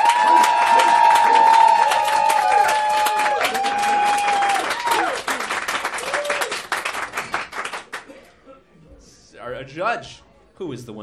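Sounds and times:
crowd whooping and cheering: 0:00.0 - 0:06.9
crowd applauding: 0:00.0 - 0:08.2
speech: 0:09.9 - 0:11.0.

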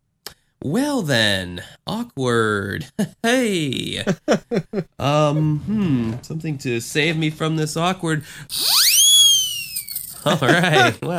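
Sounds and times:
speech: 0:00.6 - 0:08.9, 0:10.2 - 0:11.1
laughter: 0:04.0 - 0:05.0, 0:10.2 - 0:11.1
whistle sound effect sweeping upward in pitch: 0:08.5 - 0:10.1.

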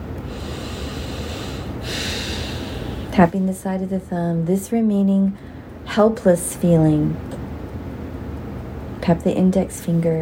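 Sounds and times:
big deep breath: 0:00.3 - 0:03.2
speech: 0:03.2 - 0:07.3, 0:09.0 - 0:10.2.

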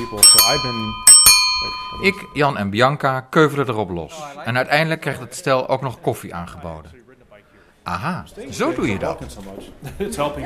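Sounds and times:
Delft blue bicycle bell ringing: 0:00.0 - 0:02.5
speech: 0:00.0 - 0:07.0, 0:07.8 - 0:10.4.

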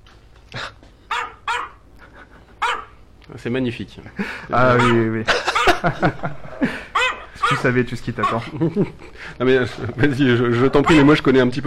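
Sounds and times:
dog barking: 0:01.1 - 0:01.9, 0:02.6 - 0:03.0, 0:04.7 - 0:05.9, 0:06.9 - 0:08.5, 0:10.8 - 0:11.1
laughter: 0:02.0 - 0:02.7, 0:04.1 - 0:11.0
speech: 0:03.4 - 0:06.8, 0:07.5 - 0:11.6.

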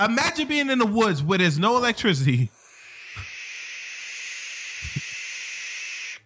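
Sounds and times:
speech: 0:00.0 - 0:02.6
barn owl hissing screech: 0:02.7 - 0:06.2.

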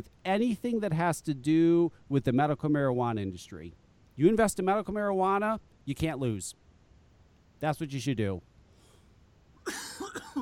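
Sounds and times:
speech: 0:00.0 - 0:06.6, 0:07.6 - 0:08.5
harsh raspy coughing fit: 0:09.6 - 0:10.4.

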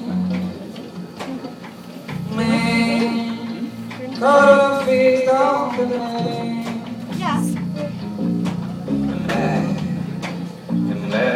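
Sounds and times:
low hum of crowd chatter at a wedding gathering: 0:00.0 - 0:11.3
strong wavering voice at a wedding gathering: 0:07.1 - 0:08.0.

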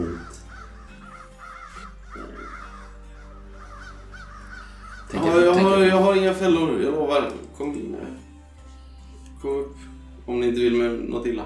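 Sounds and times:
several large crows cawing overhead: 0:00.0 - 0:06.7
speech: 0:06.3 - 0:08.2, 0:10.5 - 0:11.4.

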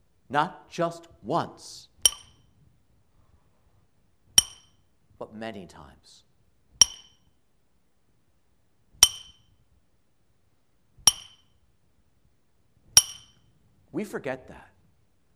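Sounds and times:
speech: 0:00.3 - 0:01.9, 0:05.2 - 0:06.3, 0:13.9 - 0:14.7
hammer striking a metal nail: 0:02.1 - 0:02.4, 0:04.4 - 0:04.8, 0:06.8 - 0:07.3, 0:09.0 - 0:09.5, 0:11.1 - 0:11.5, 0:13.0 - 0:13.4.

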